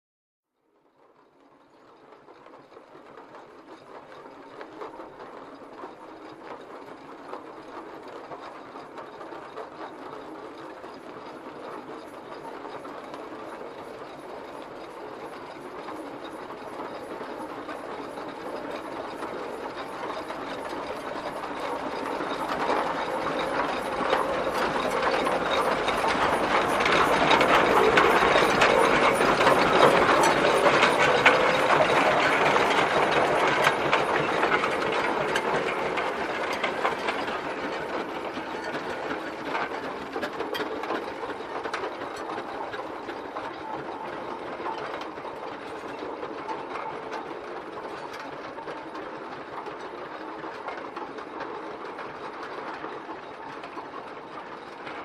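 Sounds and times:
steam tractor approaching and passing from left to right: 11.8s - 47.6s.

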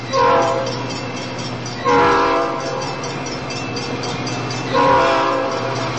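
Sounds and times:
train wheels clacking: 0.0s - 5.9s
train horn: 0.1s - 0.9s, 1.8s - 3.0s, 4.7s - 5.9s.

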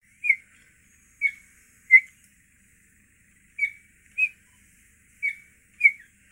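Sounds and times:
cheetah chirping with piercing squeaks: 0.1s - 2.2s, 3.6s - 4.6s, 5.2s - 6.2s.

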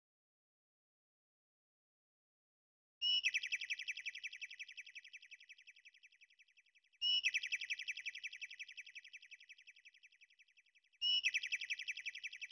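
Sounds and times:
bird twittering trill: 3.0s - 12.5s.

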